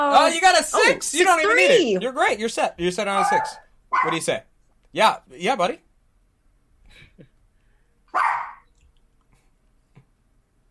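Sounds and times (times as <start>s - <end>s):
speech: 0.0s - 5.8s
dog barking loudly: 3.2s - 4.2s, 8.1s - 8.7s.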